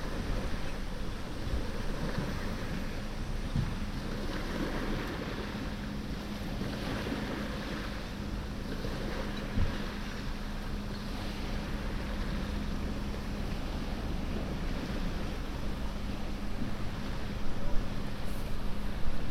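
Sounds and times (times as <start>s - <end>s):
low engine-like hum perhaps a passing boat: 0.0s - 19.3s
surf on the coast near a lighthouse: 0.0s - 19.3s
wind on the coast near a lighthouse: 0.0s - 19.3s.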